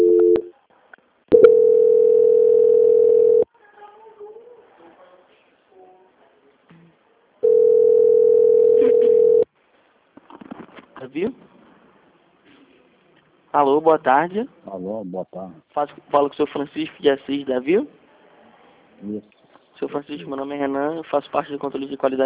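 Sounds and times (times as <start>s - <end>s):
mid-pitched telephone tone while a bank call is transferred: 0.0s - 0.5s, 1.3s - 3.5s, 7.4s - 9.5s
speech: 13.6s - 18.0s, 19.0s - 22.2s.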